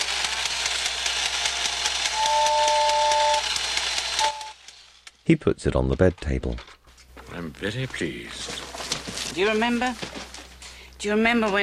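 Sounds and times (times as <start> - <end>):
toy train running with chuffing hiss and rhythmic clicking: 0.0 - 5.3
toy train shrill two-tone whistle: 1.8 - 4.7
speech: 5.3 - 6.7, 7.4 - 8.6, 9.3 - 10.2, 11.0 - 11.6.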